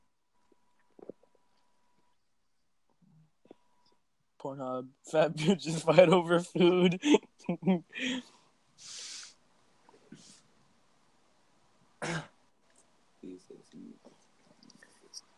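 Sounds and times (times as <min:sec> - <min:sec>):
speech: 0:04.4 - 0:09.0
breathy exhale: 0:08.0 - 0:09.4
harsh throat clearing: 0:12.0 - 0:12.3
short sharp coughs: 0:12.0 - 0:12.4.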